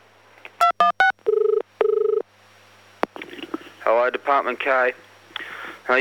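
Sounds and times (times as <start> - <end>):
telephone electronic beeps during call transfer: 0.6 - 1.4
telephone ringing as a call is transferred: 0.6 - 2.2
speech: 4.0 - 5.1.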